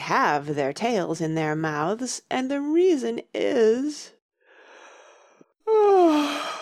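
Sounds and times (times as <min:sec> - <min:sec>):
speech: 0:00.1 - 0:04.2
drawn-out yawn performed by a voice: 0:05.7 - 0:06.6.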